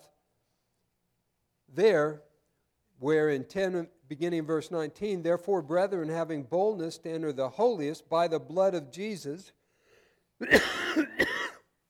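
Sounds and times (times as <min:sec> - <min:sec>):
speech: 0:01.7 - 0:02.3, 0:03.0 - 0:09.6, 0:10.4 - 0:11.0
person coughing with a raspy throaty quality: 0:10.4 - 0:11.7.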